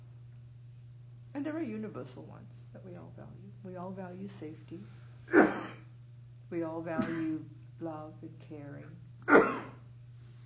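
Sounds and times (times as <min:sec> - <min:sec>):
speech: 0:01.4 - 0:05.7, 0:06.5 - 0:09.6
person sneezing: 0:05.3 - 0:05.9, 0:07.0 - 0:07.4, 0:09.3 - 0:09.8.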